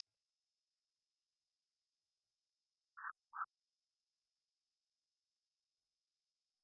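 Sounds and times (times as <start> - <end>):
Morelet's tree frog Agalychnis moreletii croaking: 3.0 - 3.5.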